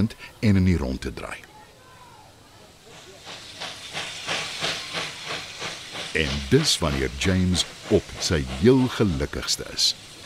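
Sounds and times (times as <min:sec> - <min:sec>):
speech: 0:00.0 - 0:01.5, 0:06.1 - 0:10.1
coal-fired steam locomotive hissing in rhythmic chuffs: 0:01.8 - 0:10.2.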